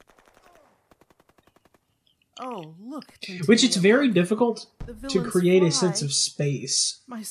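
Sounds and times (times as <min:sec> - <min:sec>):
automatic gunfire in a film battle scene: 0:00.0 - 0:01.8
speech: 0:02.4 - 0:07.2
laughter: 0:03.2 - 0:04.5, 0:05.1 - 0:06.4.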